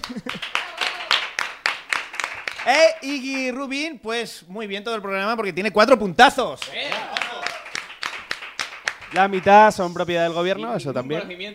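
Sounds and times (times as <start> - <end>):
laughter: 0.0 - 1.2, 6.8 - 7.7
audience applause: 0.0 - 3.4, 6.6 - 9.8
speech: 0.1 - 0.7, 2.6 - 7.2, 9.1 - 11.5.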